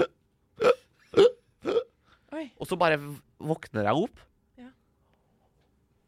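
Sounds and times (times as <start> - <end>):
person imitating retching before vomiting: 0.0 - 2.0
speech: 2.6 - 4.3.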